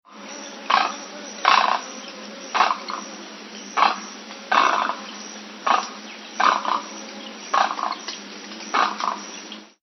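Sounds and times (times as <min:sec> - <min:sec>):
great egret calling: 0:00.2 - 0:08.1, 0:08.7 - 0:09.3.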